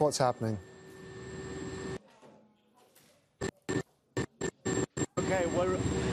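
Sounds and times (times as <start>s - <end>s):
speech: 0.0s - 0.7s
military helicopter engine and rotor noise in the cabin: 0.0s - 2.0s, 4.4s - 6.1s.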